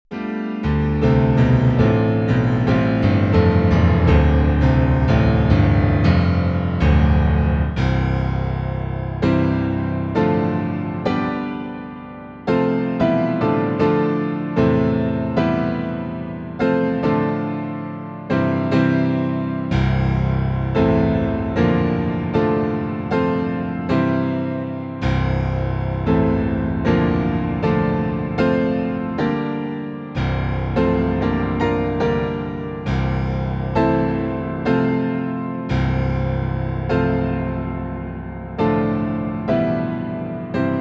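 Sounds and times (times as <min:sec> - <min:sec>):
Bluethner piano bass notes played softer: 0:00.0 - 0:40.7.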